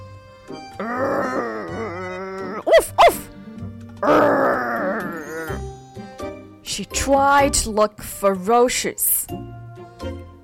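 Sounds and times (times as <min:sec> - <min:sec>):
speech: 0:00.5 - 0:01.1, 0:06.8 - 0:09.4
human voice imitating a dog growling: 0:00.5 - 0:03.3, 0:04.0 - 0:05.7.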